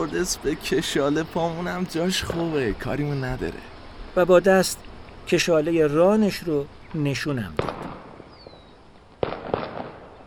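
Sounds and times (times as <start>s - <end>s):
speech: 0.0s - 8.0s
quiet noise: 0.0s - 10.2s
single rifle shots with tail: 7.6s - 8.2s, 9.2s - 10.2s.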